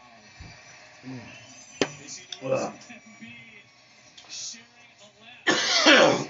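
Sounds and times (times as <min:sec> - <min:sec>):
person clearing throat: 0:05.5 - 0:06.2
person coughing: 0:05.5 - 0:06.2.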